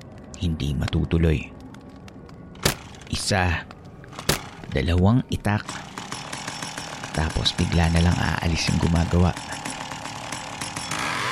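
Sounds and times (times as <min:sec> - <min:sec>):
speech: 0:00.4 - 0:01.6, 0:03.1 - 0:03.8, 0:04.7 - 0:05.8, 0:07.2 - 0:09.5
chainsaw engine running with harsh buzzing drone: 0:05.7 - 0:11.3
rasping chainsaw cutting noise: 0:05.7 - 0:11.3.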